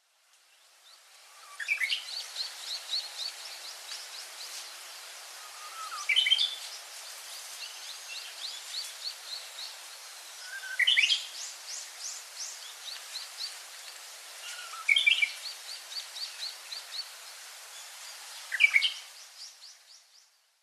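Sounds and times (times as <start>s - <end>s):
Korean Bush Warbler singing: 0.5s - 20.5s.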